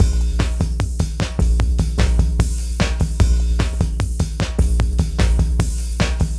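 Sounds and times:
deep electro acoustic groove: 0.0 - 6.3.

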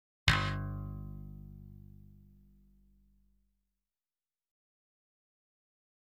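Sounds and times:
KORG slap bass notes: 0.3 - 2.5.

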